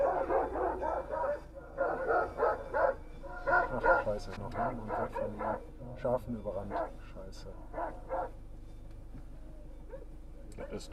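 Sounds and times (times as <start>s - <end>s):
shepherd dog barking at a car: 0.0s - 5.7s, 6.6s - 7.0s, 7.6s - 8.4s, 9.9s - 10.8s
speech: 4.1s - 8.1s, 10.6s - 10.9s.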